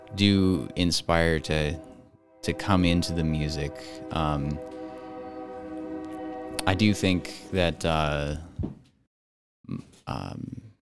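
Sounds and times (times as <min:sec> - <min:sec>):
train horn blast with a rich chord of tones: 0:00.0 - 0:08.6
speech: 0:00.2 - 0:04.8, 0:06.6 - 0:08.8, 0:09.7 - 0:10.6.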